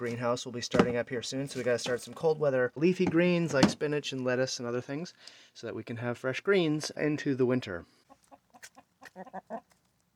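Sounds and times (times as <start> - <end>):
speech: 0.0 - 8.0, 8.7 - 9.7
chickens clucking: 8.0 - 9.9.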